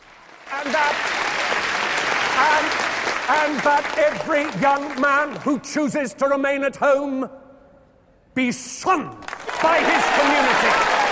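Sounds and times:
hands clapping in dense applause: 0:00.0 - 0:05.5, 0:09.2 - 0:11.1
speech: 0:00.6 - 0:01.2, 0:02.4 - 0:07.4, 0:08.4 - 0:11.0.

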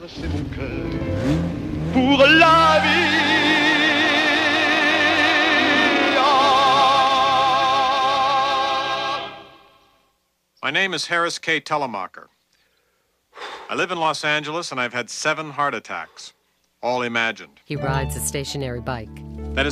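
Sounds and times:
speech: 0:00.0 - 0:02.4, 0:10.7 - 0:12.4, 0:13.7 - 0:19.7
red Ferrari car accelerating away: 0:00.0 - 0:08.6.

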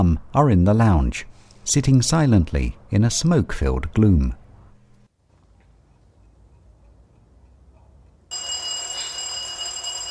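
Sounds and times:
speech: 0:00.0 - 0:04.4
electronic doorbell ringing: 0:08.3 - 0:10.0.

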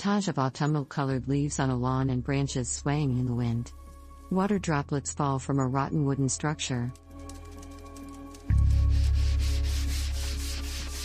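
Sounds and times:
speech: 0:00.0 - 0:07.0
abrasive rasping on a wooden window frame: 0:08.6 - 0:11.0.

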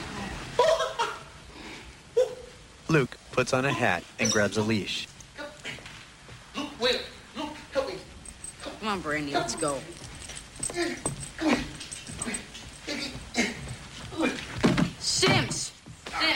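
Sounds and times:
speech: 0:02.9 - 0:05.1, 0:08.9 - 0:10.0, 0:10.8 - 0:11.7
rustling: 0:04.0 - 0:16.3
dog whimpering: 0:08.6 - 0:13.7.

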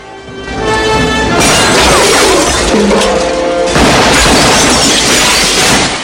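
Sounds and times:
wide office windows shattering: 0:01.3 - 0:06.0
gunfire fired through office windows: 0:03.7 - 0:06.0.

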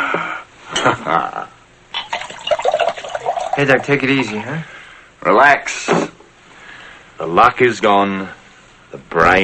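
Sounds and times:
speech: 0:00.8 - 0:01.4, 0:03.6 - 0:06.1, 0:07.2 - 0:09.4
liquor poured into a glass: 0:02.0 - 0:04.2.

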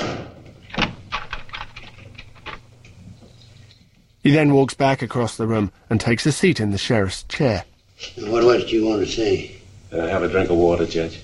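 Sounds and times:
door being shut: 0:00.0 - 0:02.6
speech: 0:04.3 - 0:11.2.

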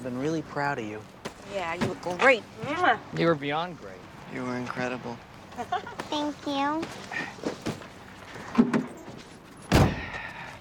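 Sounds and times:
speech: 0:00.0 - 0:07.5
car driver-side door thud: 0:09.7 - 0:10.2.

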